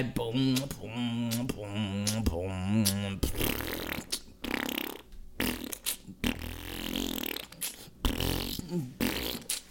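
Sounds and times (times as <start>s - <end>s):
speech: 0.0s - 3.2s
fart noises: 2.9s - 9.6s.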